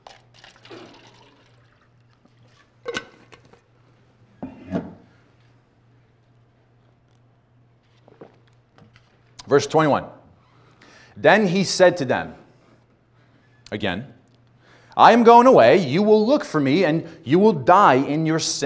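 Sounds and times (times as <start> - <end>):
water being poured into a glass: 0.0 - 2.8
speech: 9.5 - 10.2, 11.2 - 12.4, 13.7 - 14.2, 15.0 - 18.6.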